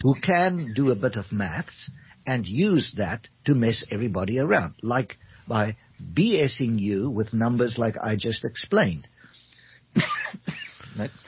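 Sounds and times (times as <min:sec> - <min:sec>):
speech: 0:00.0 - 0:09.1, 0:10.0 - 0:11.2
person coughing: 0:10.0 - 0:11.1.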